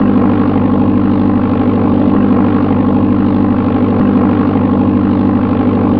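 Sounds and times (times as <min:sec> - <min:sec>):
biplane interior noise: 0:00.0 - 0:05.9.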